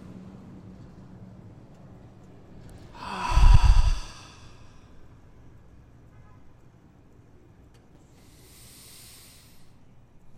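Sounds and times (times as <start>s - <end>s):
slow exhale through the mouth during a calming breathing exercise: 3.0s - 4.8s, 8.2s - 9.8s.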